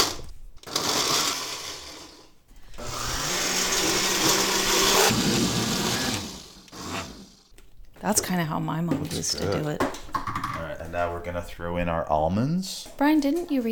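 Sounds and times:
kitchen blender blending chopped tomatoes, onions and peppers: 0.0s - 2.2s, 2.8s - 7.5s
speech: 8.0s - 10.0s, 10.9s - 13.7s.

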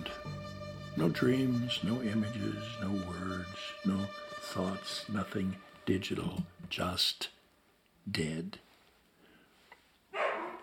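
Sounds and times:
speech: 1.0s - 7.4s, 8.0s - 8.6s
dog barking: 10.2s - 10.6s.

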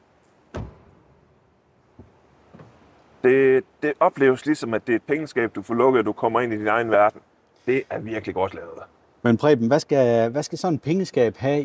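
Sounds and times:
car door shutting: 0.5s - 1.0s
speech: 3.2s - 11.6s.

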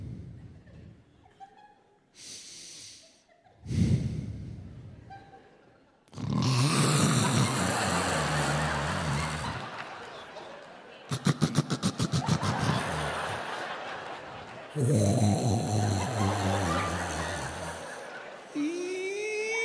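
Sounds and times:
laughter: 0.4s - 2.1s, 3.1s - 3.9s, 4.7s - 19.6s
loud rasping human snoring with guttural snorts: 6.1s - 9.7s, 11.1s - 13.6s, 14.7s - 19.6s.

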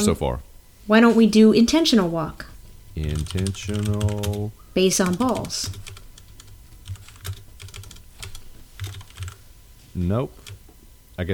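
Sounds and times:
speech: 0.0s - 5.9s, 10.0s - 10.4s
typing on a computer keyboard: 3.1s - 4.4s, 5.0s - 9.4s.

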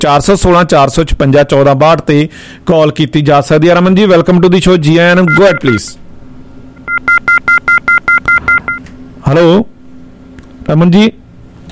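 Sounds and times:
speech: 0.0s - 6.0s, 9.3s - 9.8s, 10.7s - 11.2s
telephone keypad dual-tone beeps dialing a call: 6.9s - 8.8s.

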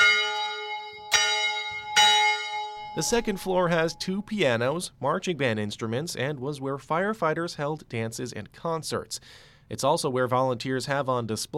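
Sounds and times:
old fire station bell rung by a rope pull: 0.0s - 4.2s
speech: 3.0s - 11.5s.

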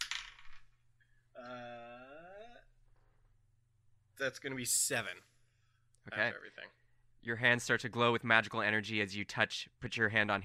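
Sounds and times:
dice rattling and clattering: 0.0s - 0.8s
speech: 4.2s - 5.3s, 6.0s - 10.4s.

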